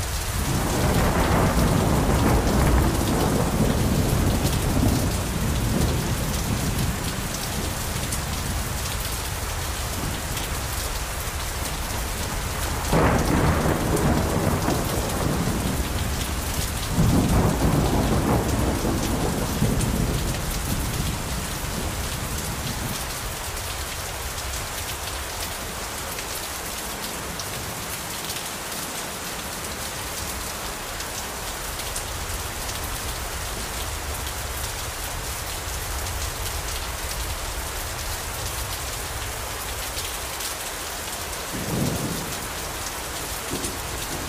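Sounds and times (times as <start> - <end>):
low thunder rumbling across the hills: 0.0 - 23.0
steady dense rain at night: 0.0 - 44.2
thunder cracks: 0.3 - 6.9, 12.9 - 21.9.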